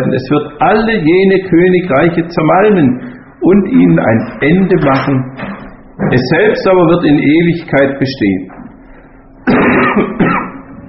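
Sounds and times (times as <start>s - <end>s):
speech: 0.0s - 8.6s, 9.4s - 10.3s
person with a cold coughing: 9.4s - 10.7s.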